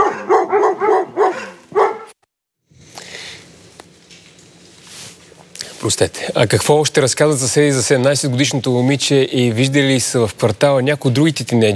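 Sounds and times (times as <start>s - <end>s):
dog barking: 0.0s - 2.2s
speech: 5.8s - 11.7s.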